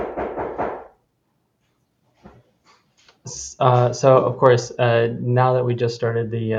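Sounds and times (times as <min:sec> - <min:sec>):
delivery person knocking firmly on a door: 0:00.0 - 0:00.9
speech: 0:03.2 - 0:06.5.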